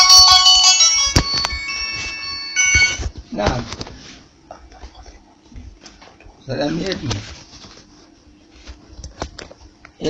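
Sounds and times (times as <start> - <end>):
mobile phone ringtone playing an electronic melody: 0.0 - 3.1
speech: 6.5 - 7.4.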